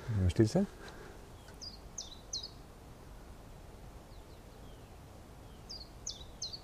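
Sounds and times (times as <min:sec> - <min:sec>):
faint rustling: 0:00.0 - 0:01.6
steady outdoor hiss: 0:00.0 - 0:06.6
speech: 0:00.1 - 0:01.0
great tit singing: 0:01.3 - 0:02.6, 0:04.1 - 0:06.6.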